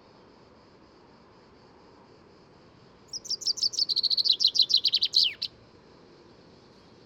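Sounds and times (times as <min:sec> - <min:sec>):
faint low background hiss: 0:00.0 - 0:07.0
common chaffinch song phrase: 0:03.0 - 0:07.0.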